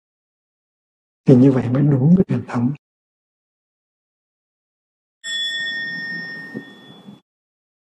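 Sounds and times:
speech: 1.3 - 2.8
mindfulness bell ringing: 5.2 - 7.2.

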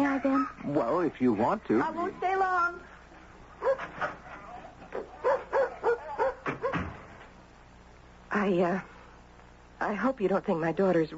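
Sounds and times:
speech: 0.2 - 2.9, 8.4 - 8.9, 9.8 - 11.1
dog barking and yipping: 3.6 - 6.9.

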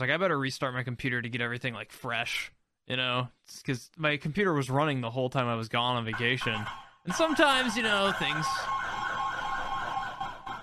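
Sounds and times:
speech: 0.0 - 8.8
ambulance siren wailing: 6.1 - 10.6.

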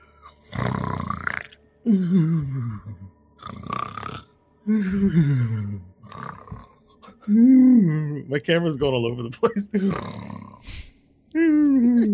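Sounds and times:
person imitating snoring: 0.3 - 8.2, 9.8 - 10.9
speech: 1.8 - 3.0, 4.7 - 5.8, 8.3 - 10.3.

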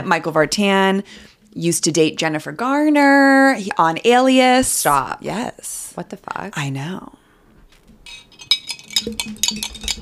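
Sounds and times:
speech: 0.0 - 7.2, 9.0 - 9.9
straws stirring in drinks: 8.1 - 9.9.

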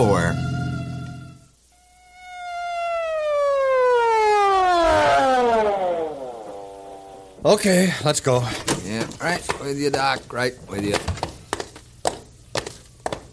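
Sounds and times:
emergency vehicle siren wailing: 0.0 - 7.4
speech: 7.5 - 11.2.

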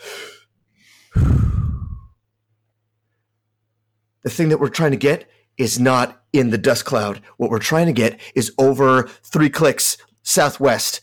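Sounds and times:
person taking a deep breath: 0.0 - 2.1
heavy low rumble: 1.2 - 2.1
speech: 4.2 - 11.0.

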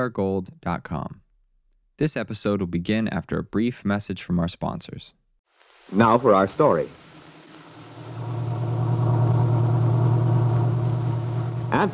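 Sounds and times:
speech: 0.0 - 1.2, 2.0 - 5.2, 5.9 - 7.1, 11.7 - 11.9
small truck engine rumbling while driving: 8.0 - 11.9.

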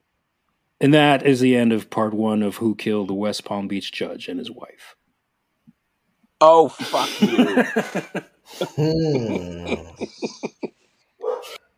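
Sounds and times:
speech: 0.8 - 5.0, 6.4 - 11.6
laughter: 6.7 - 10.7
dog barking: 11.2 - 11.6.

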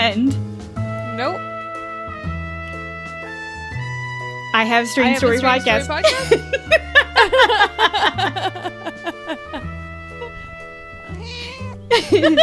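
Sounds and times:
speech: 0.1 - 0.5, 1.2 - 1.5, 4.6 - 8.8, 11.9 - 12.4
laughter: 5.2 - 9.7, 11.9 - 12.4
cat meowing loudly into the microphone: 10.2 - 11.9.

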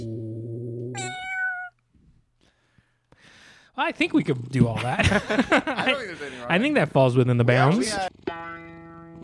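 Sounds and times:
person imitating a cat meow: 0.0 - 1.7
speech: 3.8 - 8.4
laughter: 4.7 - 6.6.

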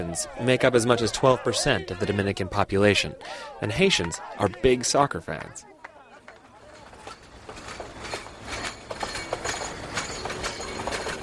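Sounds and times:
speech: 0.0 - 5.7
sugarcane train rumbling along tracks: 6.4 - 11.2
metallic clanks and knocks from train wheels and cars: 6.5 - 11.2.

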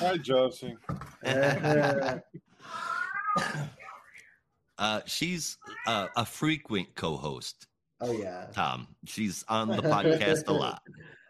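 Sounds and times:
speech: 0.0 - 3.8, 4.8 - 11.2
laughter: 1.2 - 2.4, 9.6 - 10.7
cat meowing: 2.9 - 3.4, 5.7 - 6.2.

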